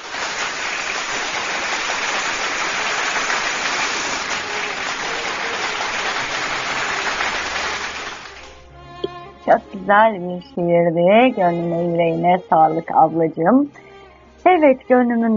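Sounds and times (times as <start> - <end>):
dense applause from many hands after a poem reading: 0.0 - 8.6
speech: 9.5 - 13.8, 14.5 - 15.3.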